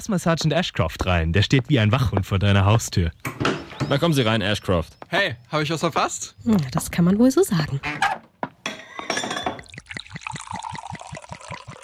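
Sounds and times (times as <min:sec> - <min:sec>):
speech: 0:00.0 - 0:08.1
glasses clinking for a toast: 0:08.6 - 0:11.8
sherry glugging from a bottle: 0:08.9 - 0:11.8.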